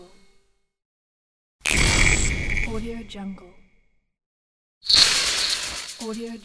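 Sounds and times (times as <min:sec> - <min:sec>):
electric jump scare game sound: 0:01.7 - 0:03.2, 0:04.9 - 0:06.3.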